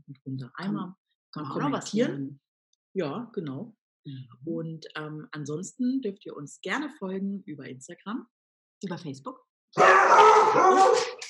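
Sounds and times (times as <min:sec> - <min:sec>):
speech: 0:00.1 - 0:11.2
dog giving a drawn-out howl-like bark: 0:09.8 - 0:11.2.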